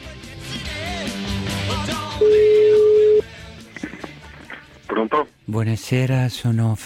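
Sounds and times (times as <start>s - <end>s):
music: 0.0s - 6.8s
telephone ringing tone on the caller's end: 2.1s - 3.2s
speech: 5.5s - 6.8s.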